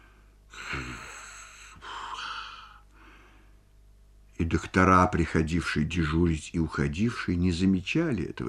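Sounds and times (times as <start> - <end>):
man snoring asleep on a couch: 0.5 - 2.8
speech: 4.4 - 8.4.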